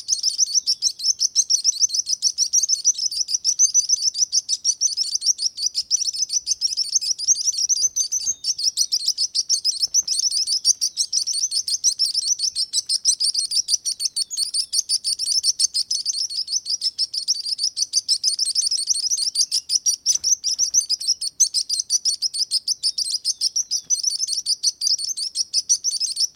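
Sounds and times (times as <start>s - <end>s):
sparrow chirping: 0.0s - 26.3s.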